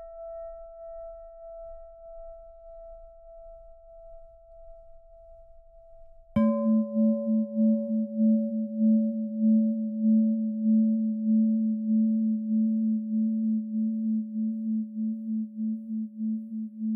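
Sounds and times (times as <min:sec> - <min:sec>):
high pure singing bowl tone for meditation: 0:00.0 - 0:16.9
lower singing bowl struck with deep wavering tone: 0:06.4 - 0:13.8.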